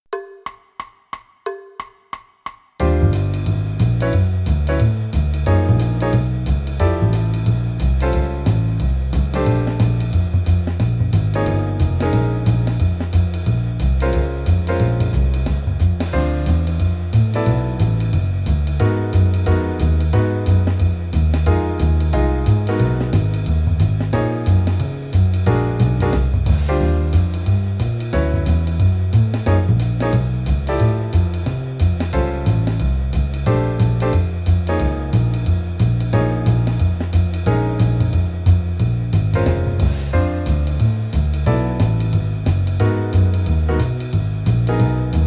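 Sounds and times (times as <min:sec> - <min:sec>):
jazz piano play-along at 180 BPM: 0:02.8 - 0:45.2.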